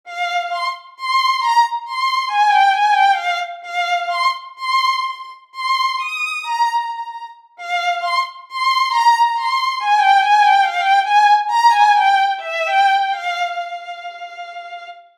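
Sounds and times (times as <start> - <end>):
violin: 0.1 - 15.1.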